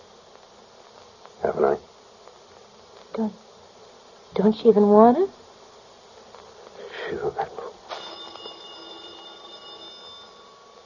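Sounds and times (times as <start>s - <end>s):
speech: 1.4s - 1.9s, 3.2s - 3.5s, 4.3s - 5.4s
telephone ringing with electronic trill: 7.9s - 10.8s.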